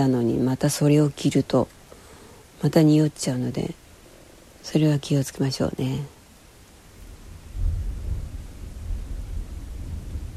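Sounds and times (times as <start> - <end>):
speech: 0.0 - 1.8, 2.6 - 3.8, 4.6 - 6.2
faint hiss like rain: 0.0 - 10.3
thunder rumbling: 7.0 - 10.3.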